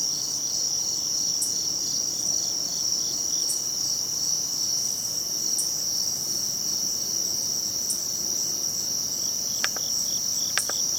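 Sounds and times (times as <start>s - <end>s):
crickets trilling: 0.0s - 10.9s.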